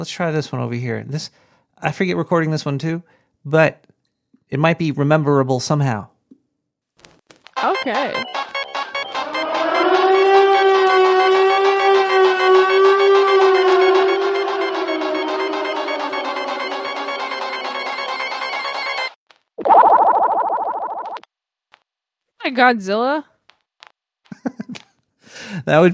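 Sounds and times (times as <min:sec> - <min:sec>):
speech: 0:00.0 - 0:03.9, 0:04.5 - 0:06.1, 0:07.8 - 0:08.4, 0:22.5 - 0:23.3, 0:25.6 - 0:25.9
loud siren wailing: 0:07.6 - 0:21.2
laughter: 0:24.3 - 0:24.8.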